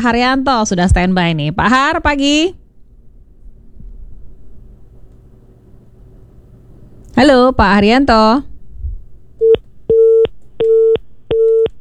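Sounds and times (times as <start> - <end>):
speech: 0.0 - 2.6, 7.2 - 8.5
telephone busy tone after a call is disconnected: 9.4 - 11.7.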